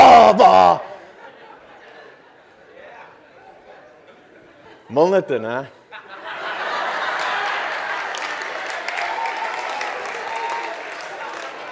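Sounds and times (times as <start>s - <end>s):
speech: 0.7s - 0.9s, 4.9s - 5.8s
laughter: 1.0s - 4.9s, 5.7s - 8.3s
crowd applauding: 6.6s - 11.7s.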